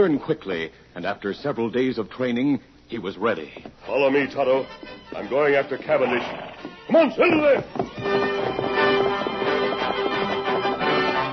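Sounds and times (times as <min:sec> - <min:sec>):
speech: 0:00.0 - 0:08.3
horse hooves galloping: 0:03.5 - 0:11.3.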